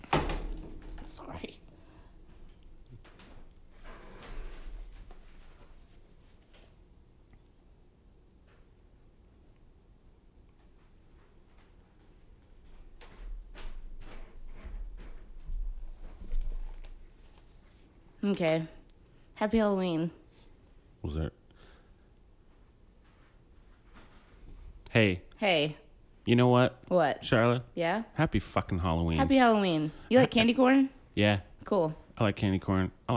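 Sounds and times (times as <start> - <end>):
door being opened: 0.0 - 1.1
speech: 18.3 - 18.8, 19.4 - 20.2, 21.0 - 21.3, 25.0 - 33.1.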